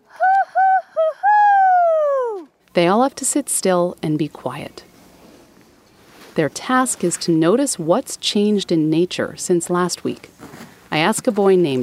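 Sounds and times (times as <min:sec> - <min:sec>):
teacher imitating an owl hoot: 0:00.0 - 0:02.5
speech: 0:02.8 - 0:04.9, 0:06.4 - 0:11.8.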